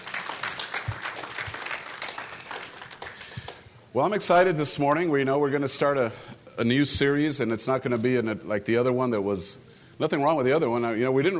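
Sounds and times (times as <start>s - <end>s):
crowd applauding children: 0.0s - 3.7s
speech: 3.9s - 11.3s.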